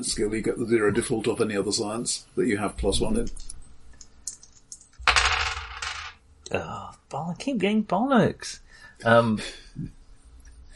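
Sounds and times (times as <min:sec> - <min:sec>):
speech: 0:00.0 - 0:03.6, 0:06.5 - 0:10.0
dice rolling across a hard table: 0:04.3 - 0:06.2.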